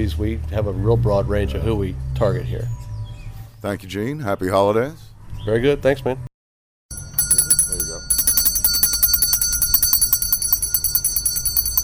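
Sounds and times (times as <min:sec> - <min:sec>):
speech: 0:00.0 - 0:02.9, 0:03.6 - 0:06.3
handheld bell ringing for charity collection: 0:06.9 - 0:11.8.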